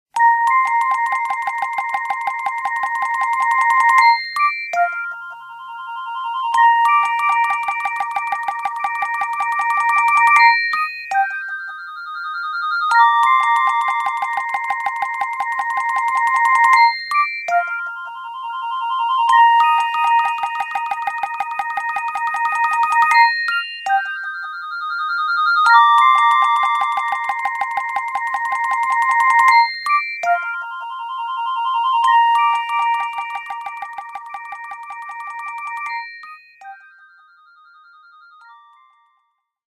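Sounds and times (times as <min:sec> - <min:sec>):
phone clock ringtone: 0:00.2 - 0:39.0.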